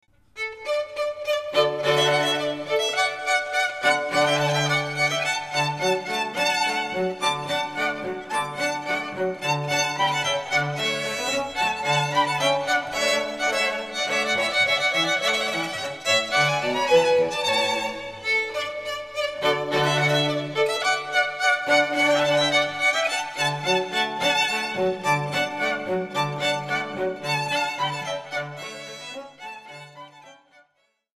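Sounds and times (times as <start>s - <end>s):
classical string ensemble playing: 0.3s - 30.6s.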